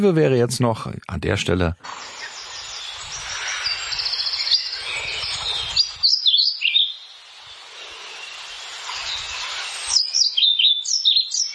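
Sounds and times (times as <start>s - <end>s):
speech: 0.0s - 2.3s
soft hiss: 0.0s - 11.5s
pied flycatcher singing: 1.9s - 11.5s.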